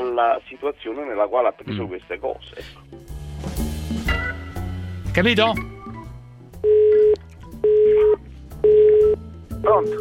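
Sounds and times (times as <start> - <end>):
speech: 0.2 - 3.5, 5.2 - 5.8, 9.6 - 10.0
telephone ringing tone on a call: 6.6 - 9.2.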